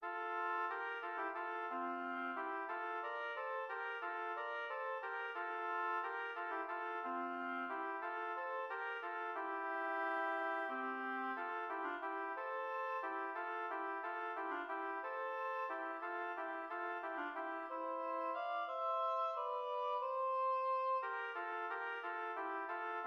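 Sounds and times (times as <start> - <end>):
two oboes playing an air in F major: 0.0 - 23.0.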